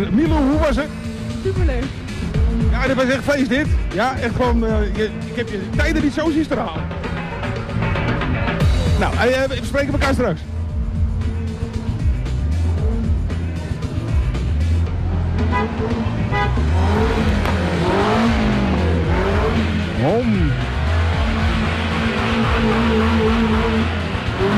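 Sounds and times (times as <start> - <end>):
speech: 0.0 - 6.9, 9.0 - 10.5, 15.6 - 18.4, 20.0 - 20.7, 22.6 - 24.5
autocross race car engines revving and roaring: 0.0 - 24.5
horn toot: 15.4 - 24.5.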